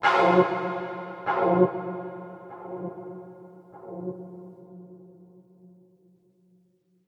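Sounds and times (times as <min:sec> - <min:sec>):
mysterious string instrument music: 0:00.0 - 0:03.2.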